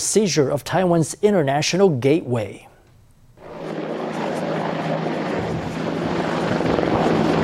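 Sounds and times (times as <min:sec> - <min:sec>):
speech: 0:00.1 - 0:02.7
Apache and Black Hawk military helicopters flying overhead: 0:03.4 - 0:07.4.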